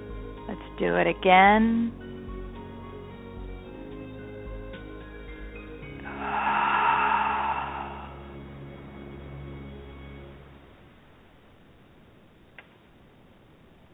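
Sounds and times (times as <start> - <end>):
speech: 0.5 - 2.0
slow deep breath during a breathing exercise: 6.0 - 8.9
quiet steady hum: 10.2 - 13.9.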